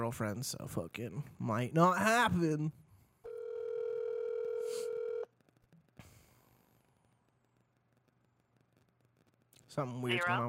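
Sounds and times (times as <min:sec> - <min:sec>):
speech: 0:00.1 - 0:02.8, 0:09.8 - 0:10.4
telephone dial tone: 0:03.3 - 0:05.3.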